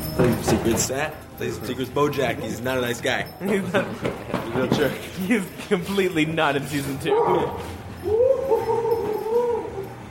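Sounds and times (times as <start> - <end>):
speech: 0.2 - 8.2
old dog whimpering while being played with: 7.1 - 10.0.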